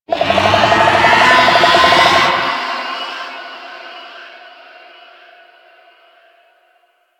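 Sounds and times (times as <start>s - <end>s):
golem creature vocal charge: 0.1s - 2.9s.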